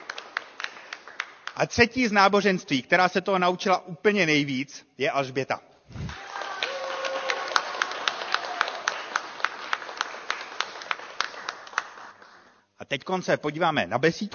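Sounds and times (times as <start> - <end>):
audience clapping at a children's performance: 0.0 - 1.8, 6.0 - 12.7
speech: 1.6 - 6.2, 12.9 - 14.3.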